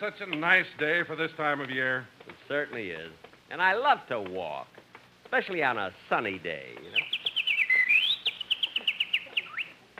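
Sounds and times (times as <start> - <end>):
speech: 0.0 - 7.1
bird chirping: 6.8 - 9.8.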